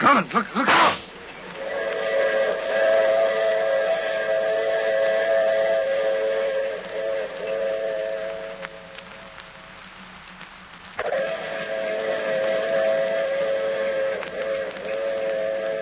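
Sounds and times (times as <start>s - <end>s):
low rumble of rail noise: 0.0s - 15.7s
speech: 0.1s - 0.8s
train whistle blowing at a railway platform: 1.6s - 9.3s, 11.0s - 15.7s.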